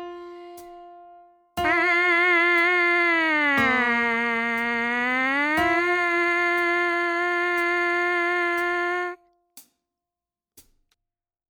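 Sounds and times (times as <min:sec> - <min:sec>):
MPC sampler buzz: 0:01.6 - 0:09.1
trumpet: 0:01.6 - 0:09.1.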